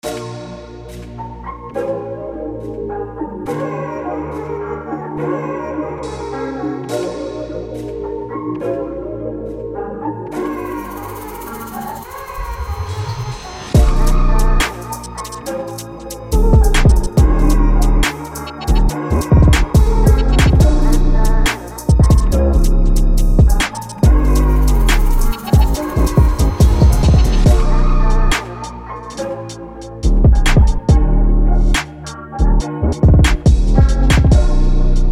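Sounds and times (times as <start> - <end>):
music loops: 10.4 - 35.1.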